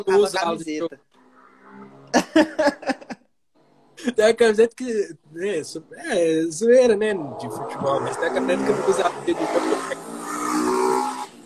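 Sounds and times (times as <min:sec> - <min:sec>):
speech: 0:00.0 - 0:01.1, 0:02.1 - 0:02.9, 0:04.0 - 0:10.0
loud motorcycle roaring past: 0:01.1 - 0:02.3, 0:07.0 - 0:11.4
laughter: 0:02.1 - 0:03.2, 0:08.2 - 0:10.2.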